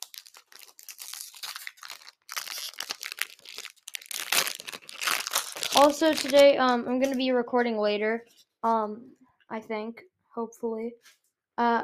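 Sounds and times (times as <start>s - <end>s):
Pokémon Astral Radiance trading card booster pack foil wrapper torn open: 0.0s - 7.2s
speech: 5.8s - 11.8s.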